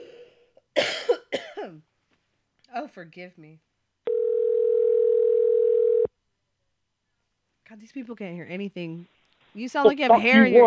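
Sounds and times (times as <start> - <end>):
speech: 2.8 - 3.7, 7.7 - 10.6
telephone dial tone after a dropped call: 4.1 - 6.1.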